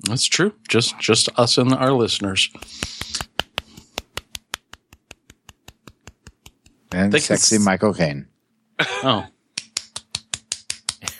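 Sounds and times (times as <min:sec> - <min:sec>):
speech: 0:00.0 - 0:02.9, 0:07.0 - 0:09.4
person clapping hands: 0:02.5 - 0:07.0, 0:09.6 - 0:11.1.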